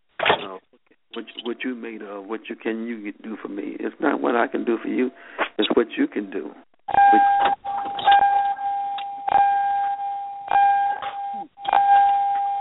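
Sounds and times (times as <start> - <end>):
speech: 1.2 - 7.6
car warning chime dinging: 6.9 - 12.5.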